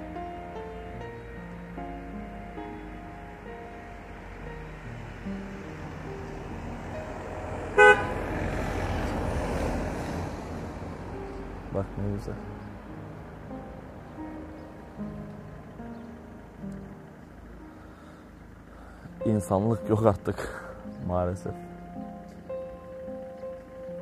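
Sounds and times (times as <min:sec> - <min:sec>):
engine and wind noise: 0:00.0 - 0:24.0
car horns honking in traffic: 0:07.7 - 0:08.5
speech: 0:11.8 - 0:12.7, 0:19.3 - 0:21.7.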